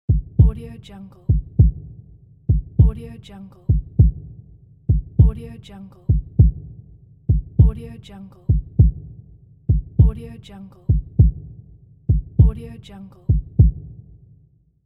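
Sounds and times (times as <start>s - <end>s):
heartbeat: 0.1s - 0.6s, 1.3s - 3.0s, 3.7s - 5.4s, 6.1s - 7.8s, 8.5s - 10.2s, 10.9s - 12.6s, 13.3s - 14.0s.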